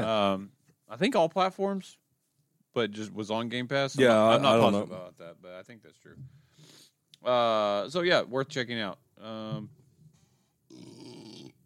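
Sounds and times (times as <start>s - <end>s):
speech: 0.0s - 2.0s, 2.8s - 9.8s
loud burp after drinking champagne: 10.7s - 11.6s.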